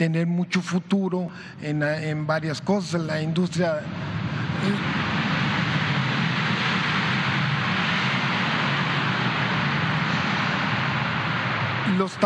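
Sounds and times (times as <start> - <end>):
speech: 0.0 - 5.2, 12.0 - 12.2
airplane engines roaring at airport: 1.3 - 12.2.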